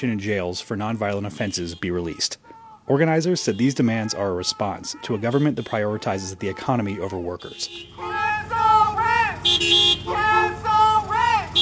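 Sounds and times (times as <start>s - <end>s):
speech: 0.0s - 8.6s, 9.6s - 10.8s
busy city street noise: 0.8s - 11.6s
car horns honking in a protest caravan through a city: 1.0s - 11.6s.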